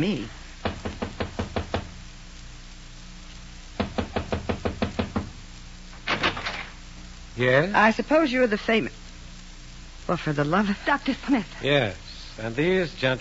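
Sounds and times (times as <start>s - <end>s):
speech: 0.0s - 0.4s, 7.4s - 9.0s, 10.1s - 13.1s
knocking on a door: 0.6s - 2.0s, 3.8s - 5.4s.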